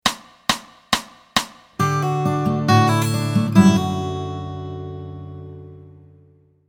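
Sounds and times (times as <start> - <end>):
open D chords played with fingers: 1.8 - 6.5.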